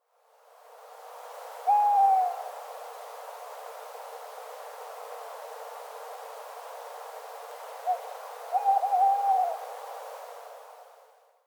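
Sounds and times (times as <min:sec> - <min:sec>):
tawny owl calling: 0:01.7 - 0:02.4, 0:07.9 - 0:09.6.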